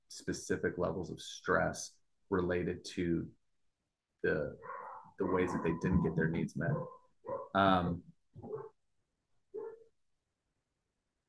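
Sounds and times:
speech: 0.1s - 3.4s, 4.2s - 8.7s
dog yelping bark: 4.6s - 5.9s, 6.7s - 7.6s, 9.6s - 9.9s
dog whimpering: 4.7s - 7.5s.

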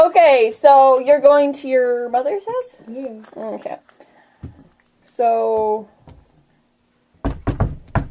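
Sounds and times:
speech: 0.2s - 3.9s, 5.2s - 5.9s
knuckles knocking on wood: 7.2s - 8.0s.

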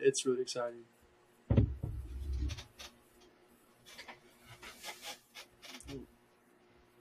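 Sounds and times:
speech: 0.0s - 1.0s
low thump: 1.5s - 2.6s.

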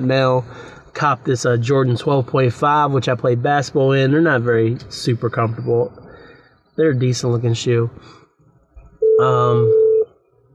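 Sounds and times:
speech: 0.0s - 6.0s, 6.8s - 8.2s, 9.2s - 9.8s
phone ringing: 9.0s - 10.1s.

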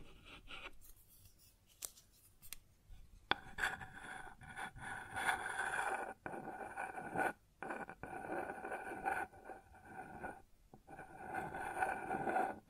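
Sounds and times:
dry scratching and rubbing on a wooden surface: 3.3s - 12.6s.

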